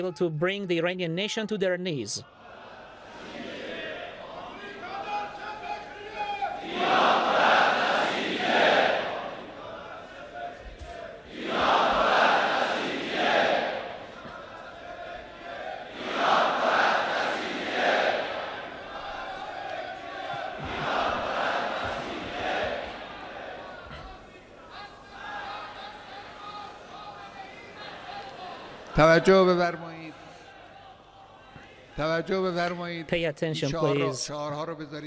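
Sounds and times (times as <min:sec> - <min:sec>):
speech: 0:00.0 - 0:02.4, 0:29.1 - 0:29.8, 0:32.0 - 0:35.0
large crowd chanting political slogans in unison: 0:02.3 - 0:05.8, 0:06.4 - 0:32.0
crowd murmur: 0:06.6 - 0:28.9.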